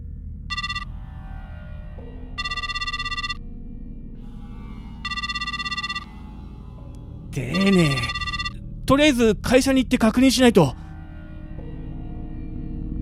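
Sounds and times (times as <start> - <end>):
telephone ringing in bright electronic bursts: 0.5 - 0.9, 2.4 - 3.4, 5.0 - 6.1, 7.5 - 8.5
speech: 7.4 - 8.2, 8.9 - 10.8.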